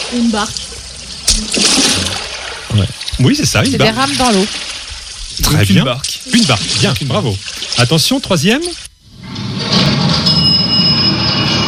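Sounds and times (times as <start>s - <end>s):
speech: 0.1s - 0.8s, 1.4s - 2.2s, 2.8s - 4.7s, 5.4s - 8.9s
elevator running with mechanical rumble and high-pitched whine: 9.0s - 11.6s.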